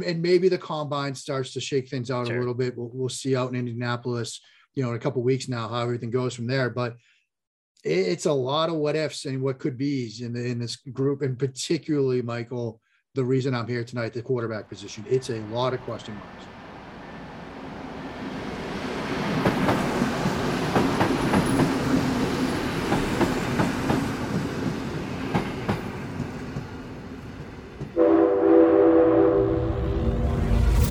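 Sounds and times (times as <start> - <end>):
speech: 0.0 - 7.1, 7.8 - 16.6
train rumbling along the rails with rhythmic clacking: 15.0 - 28.0
loud sustained train horn blaring: 28.0 - 30.7.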